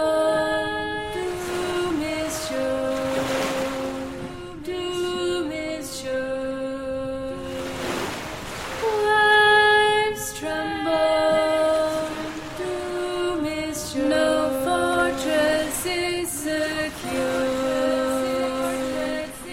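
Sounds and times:
ocean waves surging: 0:00.0 - 0:06.2, 0:06.8 - 0:19.5
steady droning musical tone: 0:00.0 - 0:19.5.

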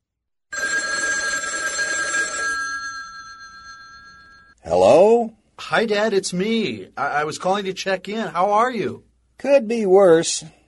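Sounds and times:
telephone ringing tone on an outgoing call to a hospital room: 0:00.5 - 0:04.6
speech: 0:05.7 - 0:10.6.

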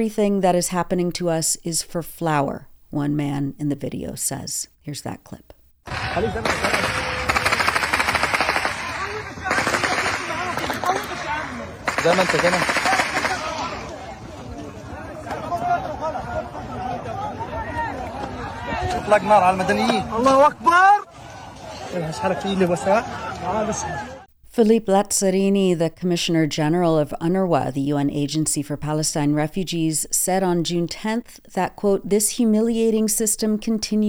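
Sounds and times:
speech: 0:00.0 - 0:07.1, 0:12.0 - 0:12.9, 0:19.1 - 0:20.9, 0:21.9 - 0:34.0
rapid automatic gunfire: 0:05.9 - 0:13.6
voices shouting: 0:05.9 - 0:24.3
crowd murmuring: 0:08.2 - 0:24.3.

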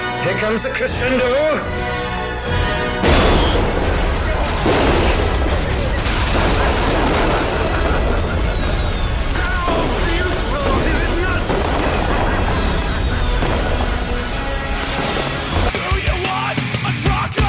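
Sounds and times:
speech: 0:00.2 - 0:02.8
dense barrage of fireworks banging and crackling: 0:03.0 - 0:16.5.

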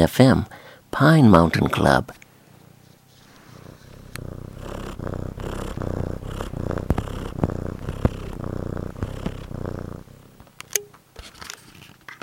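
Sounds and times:
speech: 0:00.0 - 0:02.2
cat purring: 0:02.5 - 0:10.8
faint clicks and snuffles: 0:03.2 - 0:10.8.

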